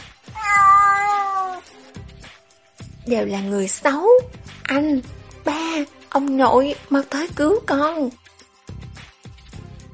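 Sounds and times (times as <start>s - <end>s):
kitten meowing pitifully while being carried off: 0.3s - 1.7s
speech: 3.1s - 8.2s.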